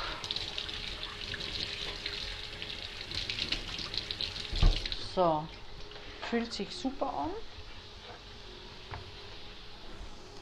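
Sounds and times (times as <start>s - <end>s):
tap water running over squash halves being rinsed: 0.9s - 5.1s
speech: 5.2s - 5.6s, 6.3s - 7.5s.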